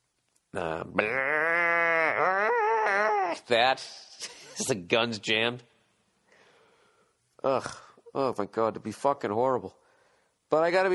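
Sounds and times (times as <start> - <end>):
speech: 0.5 - 1.6, 3.4 - 5.7, 7.4 - 9.8, 10.5 - 10.9
person imitating a wounded cow mooing: 0.6 - 3.5.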